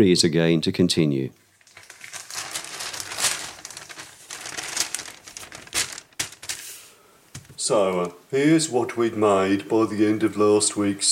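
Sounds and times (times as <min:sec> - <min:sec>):
speech: 0:00.0 - 0:01.4, 0:07.7 - 0:11.1
large shiny-sided sheets of washi paper crinkling and rustling while being folded: 0:01.6 - 0:07.6.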